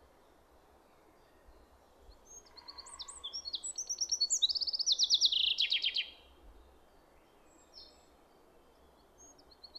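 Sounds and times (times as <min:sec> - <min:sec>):
common chaffinch Fringilla coelebs singing: 0:02.3 - 0:06.2.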